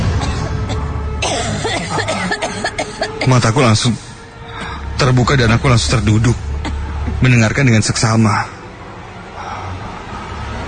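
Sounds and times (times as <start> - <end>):
person coughing in rough raspy bursts: 0.0 - 3.3
speech: 3.2 - 4.1, 5.0 - 6.5, 7.2 - 8.6.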